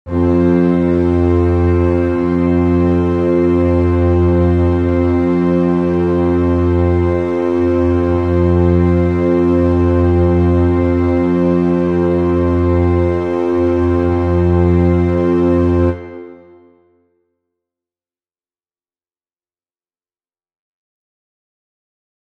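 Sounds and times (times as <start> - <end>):
F tuning drone: 0.1 - 16.6.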